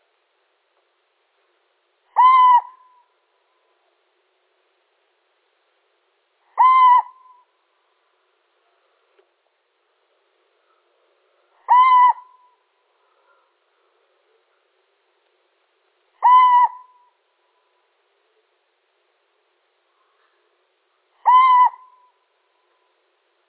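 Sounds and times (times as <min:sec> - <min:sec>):
male little owl giving level mewing notes: 0:02.2 - 0:03.0, 0:06.6 - 0:07.4, 0:11.7 - 0:12.6, 0:16.2 - 0:17.1, 0:21.2 - 0:22.1.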